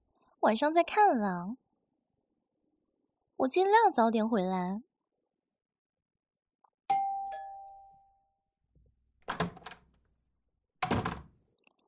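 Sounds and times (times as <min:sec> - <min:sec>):
speech: 0:00.4 - 0:01.6, 0:03.4 - 0:04.9
doorbell chime: 0:06.9 - 0:08.4
door being unlatched and pulled open: 0:09.2 - 0:10.0, 0:10.8 - 0:11.4.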